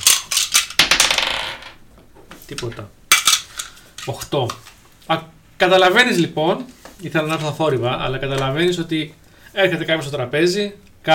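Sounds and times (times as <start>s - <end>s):
small die clattering across a hard tabletop: 0.8s - 1.8s
speech: 2.5s - 3.0s, 4.0s - 11.1s.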